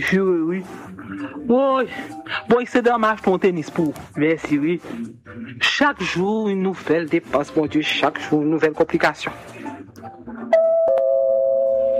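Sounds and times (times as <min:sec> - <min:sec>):
household movement: 0:00.0 - 0:10.0
speech: 0:00.0 - 0:10.5
doorbell chime: 0:10.6 - 0:11.9.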